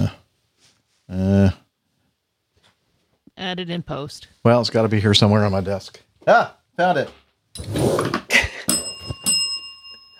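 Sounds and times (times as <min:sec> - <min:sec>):
speech: 0:01.1 - 0:01.6, 0:03.5 - 0:08.2
small metal bell ringing: 0:08.6 - 0:10.1.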